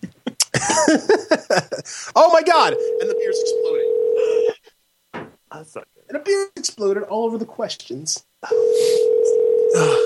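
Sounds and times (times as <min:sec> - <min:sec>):
faint noise: 0:00.0 - 0:10.0
speech: 0:00.6 - 0:04.4, 0:05.6 - 0:10.0
telephone ringing tone: 0:02.7 - 0:04.6, 0:08.4 - 0:10.0.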